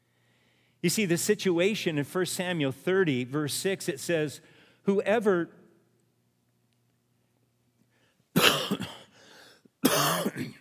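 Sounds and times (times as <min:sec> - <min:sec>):
speech: 0:00.8 - 0:05.6
coughing and throat clearing: 0:08.4 - 0:09.2, 0:09.8 - 0:10.5.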